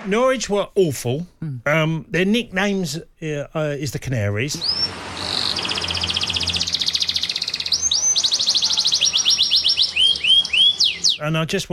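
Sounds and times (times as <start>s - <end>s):
speech: 0.0s - 4.9s, 11.2s - 11.7s
canary singing: 4.6s - 11.3s.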